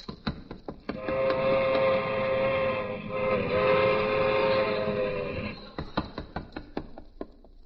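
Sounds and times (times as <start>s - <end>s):
sustained multi-tone train whistle: 0.9s - 5.8s.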